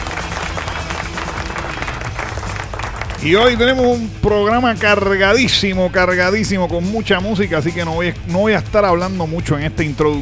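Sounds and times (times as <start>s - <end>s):
crowd applause in a radio studio: 0.0s - 3.5s
speech: 3.2s - 10.2s.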